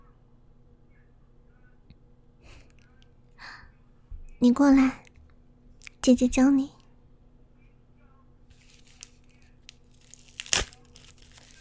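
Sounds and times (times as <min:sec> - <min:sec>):
speech: 0:04.4 - 0:05.0, 0:06.0 - 0:06.8
sanitary pad plastic wrapper crinkling: 0:08.5 - 0:11.6
sanitary pad plastic wrapper tearing: 0:08.6 - 0:11.6.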